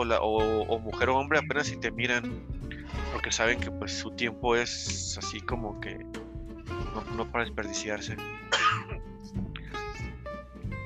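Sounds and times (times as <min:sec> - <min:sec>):
speech: 0:00.0 - 0:06.2, 0:06.8 - 0:09.4
person coughing lightly: 0:08.5 - 0:09.0
soft throat clearing: 0:08.5 - 0:09.0.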